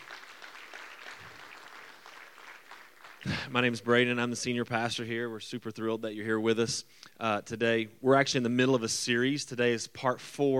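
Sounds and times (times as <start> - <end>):
crowd applause: 0.0 - 3.7
speech: 3.2 - 10.5.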